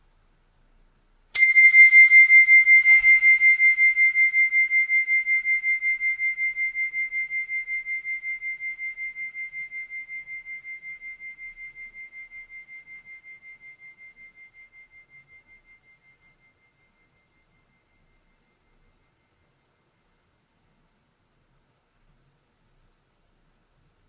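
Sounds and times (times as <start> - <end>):
mindfulness bell struck and ringing: 1.4 - 18.6.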